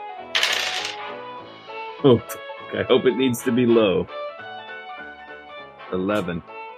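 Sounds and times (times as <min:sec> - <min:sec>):
steady music bed: 0:00.0 - 0:06.7
several dice being rolled: 0:00.4 - 0:01.0
speech: 0:02.0 - 0:04.2, 0:05.9 - 0:06.5.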